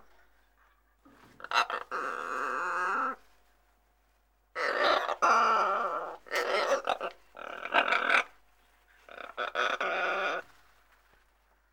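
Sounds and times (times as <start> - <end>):
macaw squawking: 1.4 - 3.2, 4.6 - 8.3, 9.1 - 10.5.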